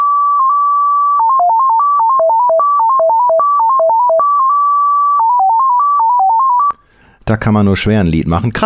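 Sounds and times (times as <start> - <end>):
Eurosignal radio paging tone: 0.0 - 6.8
speech: 7.3 - 8.6.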